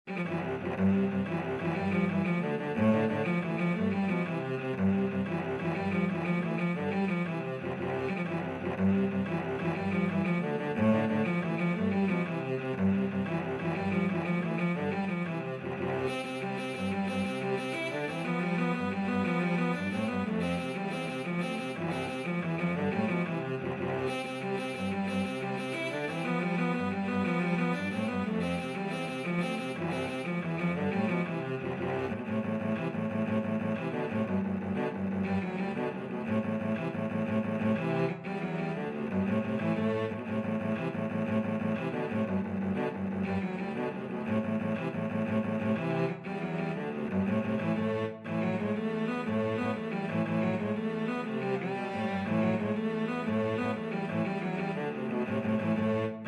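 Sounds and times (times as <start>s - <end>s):
cello duet playing an Irish jig medley: 0.0s - 56.2s.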